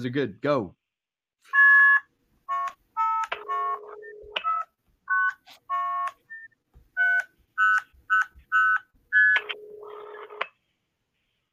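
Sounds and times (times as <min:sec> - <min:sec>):
speech: 0:00.0 - 0:00.8
electronic telephone dialing tones from a blue box: 0:01.5 - 0:10.6.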